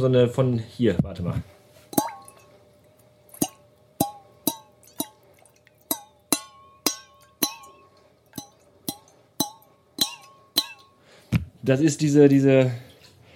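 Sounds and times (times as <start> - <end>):
speech: 0.0 - 1.5, 11.7 - 12.9
small metal jug with water in it being tapped: 1.9 - 11.2.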